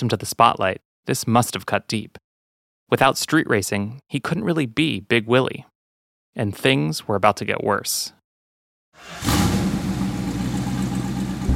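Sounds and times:
speech: 0.0s - 2.2s, 2.9s - 5.7s, 6.4s - 8.2s, 9.0s - 9.6s
1969 Dodge Charger Daytona with Hemi engine idling: 9.0s - 11.5s.

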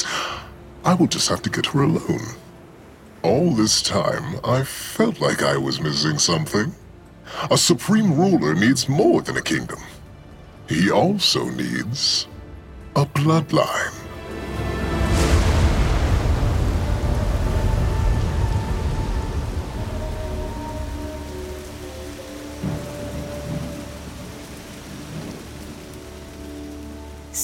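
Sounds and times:
heavy rain pouring in a rainstorm: 0.0s - 27.4s
speech: 0.8s - 2.4s, 3.2s - 10.0s, 10.7s - 12.3s, 13.0s - 14.0s
thunder rumbling: 14.0s - 27.4s.

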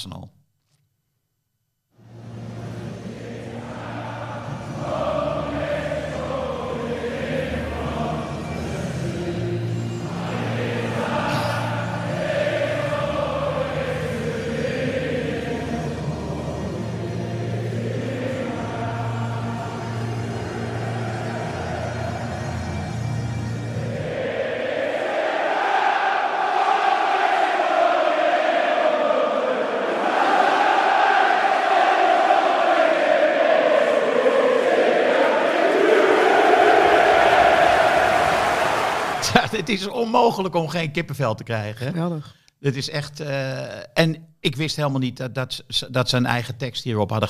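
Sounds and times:
speech: 0.0s - 0.4s, 39.6s - 47.2s
football stadium crowd singing a slow swaying terrace anthem: 2.3s - 39.5s.

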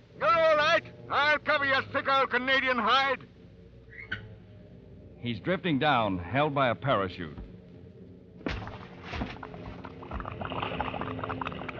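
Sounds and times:
speech: 1.1s - 3.3s, 5.2s - 7.4s
heavy splash of a man hitting the water: 8.4s - 11.1s
water sloshing and churning: 8.4s - 11.7s.

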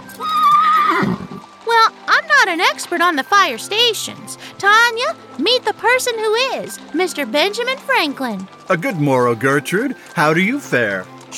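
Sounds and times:
horse neighing: 0.1s - 1.6s
horse snorting roughly: 0.7s - 1.6s
speech: 2.5s - 11.3s.

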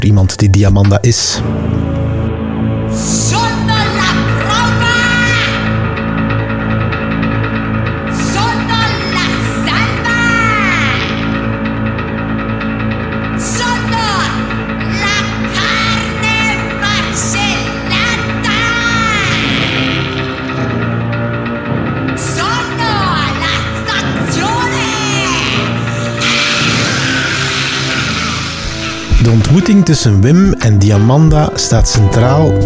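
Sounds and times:
speech: 0.0s - 2.1s, 3.0s - 3.4s, 29.3s - 32.6s
dense sustained piano chords: 1.4s - 32.6s
woman performer shrieking and wailing at a piano on stage: 3.2s - 6.0s, 8.2s - 11.6s, 13.4s - 20.6s, 22.6s - 29.1s.

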